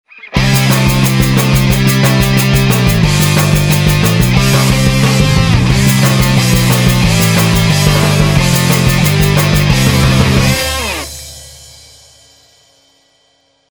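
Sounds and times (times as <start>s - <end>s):
rock arrangement: 0.3s - 12.2s.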